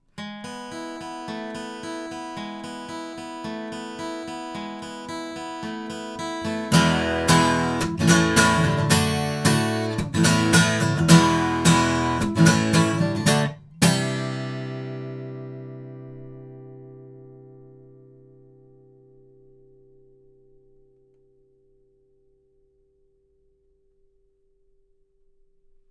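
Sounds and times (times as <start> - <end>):
guitar recorded with an omni condenser microphone: 0.0 - 23.8.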